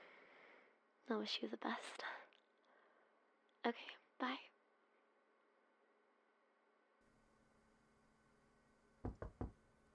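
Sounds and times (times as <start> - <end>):
speech: 1.1 - 2.2, 3.6 - 4.6
heavy banging on a door: 9.1 - 9.6.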